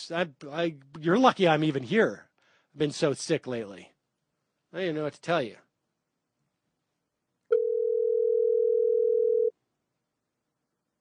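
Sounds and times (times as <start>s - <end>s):
speech: 0.0s - 3.9s, 4.7s - 5.6s
telephone dial tone while placing a call: 7.5s - 9.5s.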